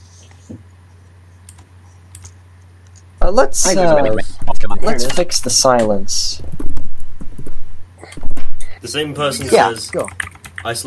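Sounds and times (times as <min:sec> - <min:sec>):
steady low hum: 0:00.0 - 0:10.6
speech: 0:00.5 - 0:00.7, 0:03.3 - 0:06.6, 0:08.8 - 0:10.8
mechanical keyboard clicks: 0:09.9 - 0:10.7.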